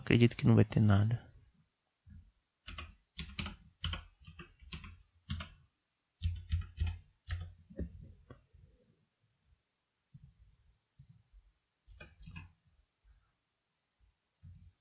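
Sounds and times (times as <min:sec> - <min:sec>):
speech: 0:00.1 - 0:01.3
typing on a computer keyboard: 0:02.7 - 0:05.6, 0:06.2 - 0:07.9, 0:11.9 - 0:12.6.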